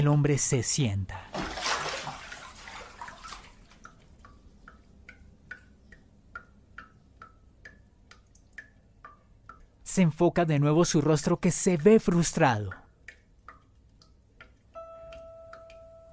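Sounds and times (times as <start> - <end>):
speech: 0.0 - 1.4, 10.0 - 12.8
splashing rushing water: 1.3 - 3.7
faucet dripping: 1.4 - 16.1.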